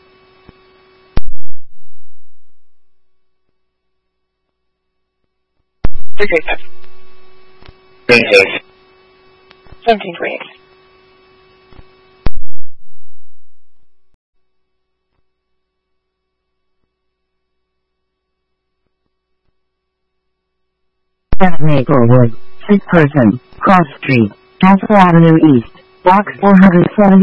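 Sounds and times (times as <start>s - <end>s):
radio dispatch alert tones: 5.9s - 7.4s, 21.4s - 27.2s
speech: 6.2s - 6.9s, 8.1s - 8.6s, 9.8s - 10.6s, 21.4s - 27.2s.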